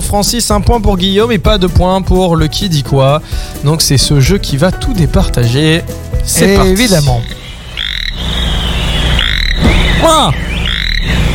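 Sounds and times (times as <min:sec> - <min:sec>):
speech: 0:00.1 - 0:07.4, 0:10.0 - 0:11.2
steady droning background: 0:06.5 - 0:11.3
toad croaking in loud raspy bursts: 0:06.6 - 0:11.3.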